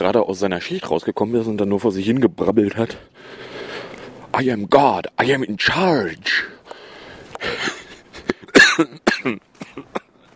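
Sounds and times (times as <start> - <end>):
speech: 0.0 - 3.4, 4.4 - 6.6, 8.8 - 9.9
harsh raspy coughs: 7.4 - 10.2.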